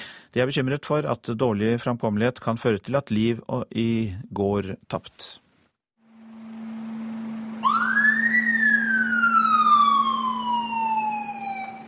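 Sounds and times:
speech: 0.4s - 5.4s
steady low engine drone: 6.0s - 11.8s
emergency vehicle siren in Oslo Norway wailing: 7.3s - 11.8s.

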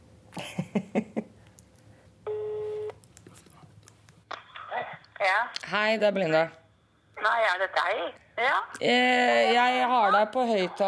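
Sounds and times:
phone ringback tone through a phone line: 2.3s - 2.9s
speech: 5.7s - 6.6s, 7.2s - 10.8s.

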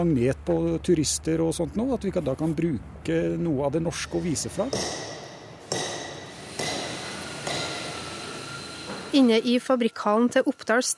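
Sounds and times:
speech: 0.0s - 5.2s, 9.2s - 10.9s
steady workshop hum: 0.0s - 10.9s
hammer driving a chisel into slate blocks: 4.3s - 8.2s.

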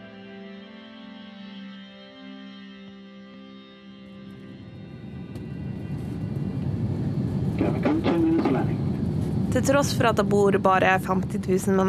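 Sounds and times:
engine and air noise inside a jet airliner cabin in flight to Greenland: 4.0s - 11.8s
speech: 7.6s - 8.1s, 9.5s - 11.8s.

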